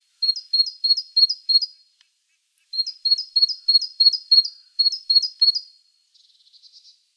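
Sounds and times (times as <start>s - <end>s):
great tit singing, Parus major: 0.2s - 1.8s, 2.7s - 7.0s.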